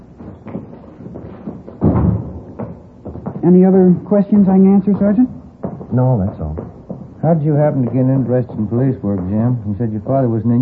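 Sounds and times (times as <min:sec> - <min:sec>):
door closing with a muffled thud: 0:01.8 - 0:02.7
speech: 0:03.4 - 0:06.4, 0:07.2 - 0:10.6.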